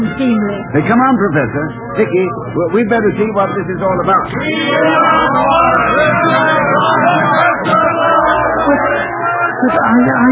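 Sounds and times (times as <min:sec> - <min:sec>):
speech: 0:00.2 - 0:08.0, 0:08.7 - 0:10.3
large crowd cheering and shouting outside: 0:04.3 - 0:10.3.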